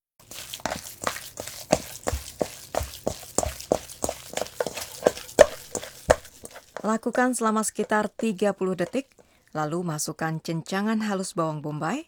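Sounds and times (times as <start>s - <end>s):
minced meat being mixed by hand with salt and pepper in a bowl: 0.2s - 9.6s
speech: 6.9s - 12.0s.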